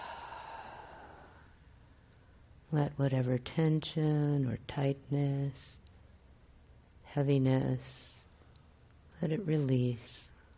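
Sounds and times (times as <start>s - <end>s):
deep breath through the mouth during a guided relaxation exercise: 0.0s - 1.4s
speech: 2.7s - 5.8s, 7.1s - 8.1s, 9.2s - 10.3s.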